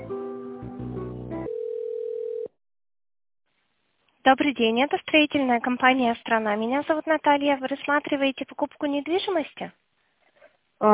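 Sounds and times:
telephone dial tone as a call is placed: 0:01.5 - 0:02.5
speech: 0:04.2 - 0:09.8.

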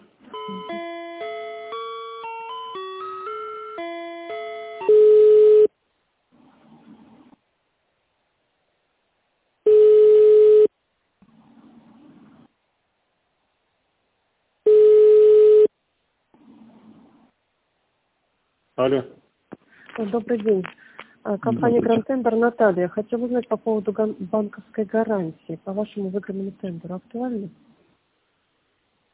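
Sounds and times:
telephone line tones while a call is transferred: 0:00.3 - 0:05.7, 0:09.7 - 0:10.7, 0:14.7 - 0:15.7
speech: 0:18.8 - 0:19.2, 0:20.0 - 0:27.7.

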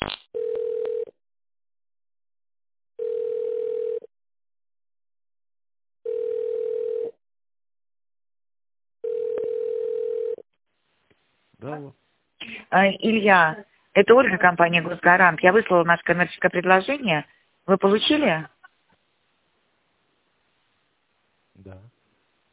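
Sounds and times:
telephone ringing tone while a call is transferred: 0:00.4 - 0:01.1, 0:03.0 - 0:04.1, 0:06.0 - 0:07.2, 0:09.0 - 0:10.4
speech: 0:11.6 - 0:18.6.

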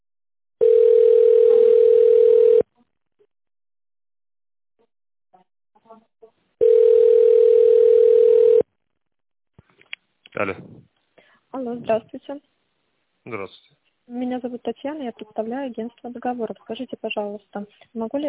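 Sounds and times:
telephone ringback tone on a transferred call: 0:00.6 - 0:02.7, 0:06.6 - 0:08.6
speech: 0:10.4 - 0:10.7, 0:11.8 - 0:12.6, 0:13.3 - 0:18.2.

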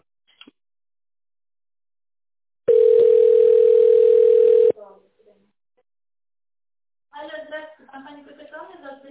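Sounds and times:
telephone line tones while a call is transferred: 0:02.7 - 0:04.7.

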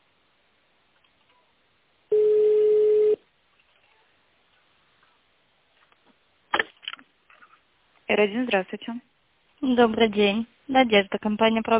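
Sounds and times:
quiet telephone line noise: 0:02.1 - 0:03.2
steady electronic tone on a telephone line during touch-tone dialing: 0:02.1 - 0:03.2
speech: 0:08.1 - 0:11.7.

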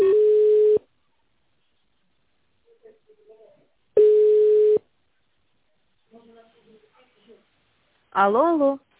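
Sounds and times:
ringback tones on a phone line: 0:00.0 - 0:00.8, 0:04.0 - 0:04.8
speech: 0:08.2 - 0:08.9.

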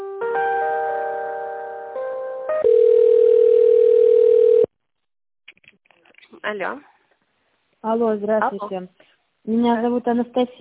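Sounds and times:
electronic telephone tones during an office call transfer: 0:02.6 - 0:04.7
speech: 0:06.5 - 0:06.9, 0:07.8 - 0:10.5.

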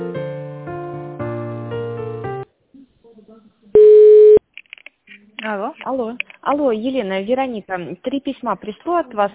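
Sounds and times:
single loud steady telephone beep: 0:03.8 - 0:04.4
telephone transfer tones on a call: 0:03.8 - 0:04.4
speech: 0:05.9 - 0:09.3.

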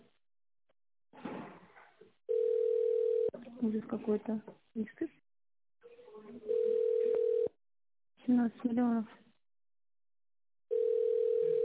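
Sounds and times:
steady telephone dial tone while calling a wine supply company: 0:02.3 - 0:03.3, 0:06.5 - 0:07.5, 0:10.7 - 0:11.6
speech: 0:03.6 - 0:05.2, 0:08.2 - 0:09.2.

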